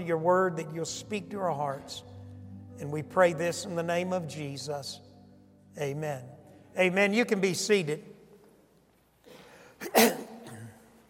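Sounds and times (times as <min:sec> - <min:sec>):
speech: 0:00.0 - 0:02.1, 0:02.8 - 0:05.1, 0:05.8 - 0:08.1, 0:09.8 - 0:10.3
sharp cough: 0:09.8 - 0:10.9.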